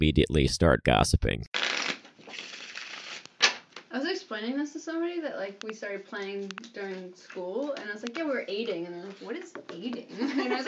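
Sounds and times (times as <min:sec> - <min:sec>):
speech: 0:00.0 - 0:01.7, 0:04.3 - 0:10.6
deck of playing cards being riffle-shuffled: 0:01.6 - 0:03.6
laughter: 0:10.1 - 0:10.6.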